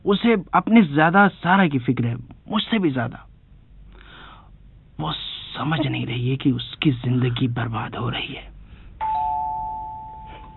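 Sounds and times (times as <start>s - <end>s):
speech: 0.0s - 3.3s, 5.0s - 8.5s
faint rumble: 0.0s - 8.9s
electronic doorbell ringing with a sustained tone near 1 kHz: 9.0s - 10.5s.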